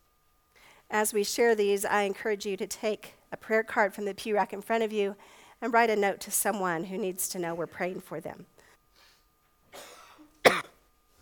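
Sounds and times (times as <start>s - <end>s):
speech: 0.9s - 8.5s
ill person coughing at a church service: 9.7s - 10.8s
throat clearing: 9.7s - 10.8s.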